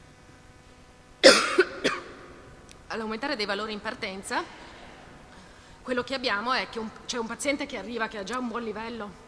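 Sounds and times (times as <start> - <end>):
person with a sore throat coughing: 1.2 - 2.4
speech: 3.0 - 4.7, 5.8 - 9.2.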